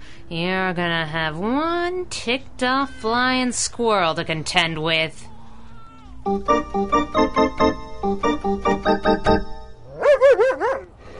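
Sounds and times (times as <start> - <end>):
speech: 0.3 - 5.3, 6.2 - 10.9
dog whining and yowling: 9.8 - 11.0.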